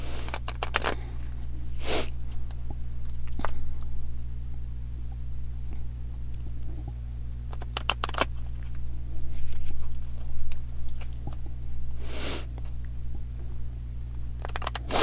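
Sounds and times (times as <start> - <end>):
deck of cards being shuffled for a card pull: 0.0 - 1.0, 7.6 - 8.6, 14.4 - 15.0
steady low hum: 0.0 - 15.0
person sniffling through the nose: 12.0 - 12.5, 14.9 - 15.0.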